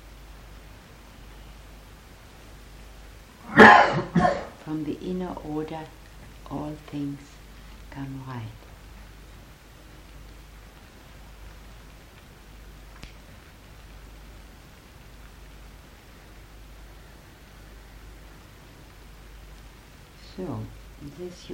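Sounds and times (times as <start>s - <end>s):
steady morning rain: 0.0s - 21.5s
speech: 4.2s - 8.6s, 20.4s - 21.5s
faint tick: 12.9s - 13.5s.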